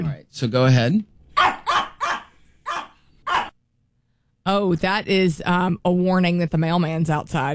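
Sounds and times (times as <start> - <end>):
speech: 0.4 - 1.1, 4.5 - 7.5
dog barking: 1.4 - 3.6.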